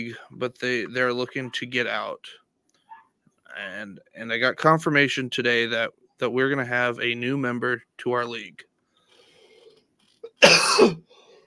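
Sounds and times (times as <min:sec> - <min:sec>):
speech: 0:00.0 - 0:02.4, 0:03.5 - 0:08.7, 0:10.4 - 0:11.1
rasping cough or throat clearing from someone getting over a sickness: 0:10.3 - 0:11.1.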